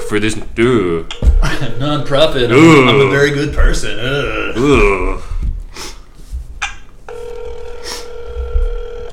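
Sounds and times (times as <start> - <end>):
speech: 0.1 - 5.9
breathy noises: 4.2 - 6.5, 7.5 - 8.4
steady electronic phone tone of an unanswered call: 7.1 - 9.1.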